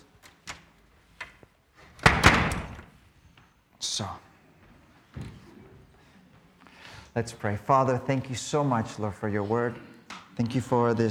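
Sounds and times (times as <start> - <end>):
door creaking: 2.0 - 2.9
speech: 4.0 - 4.3, 7.2 - 11.0.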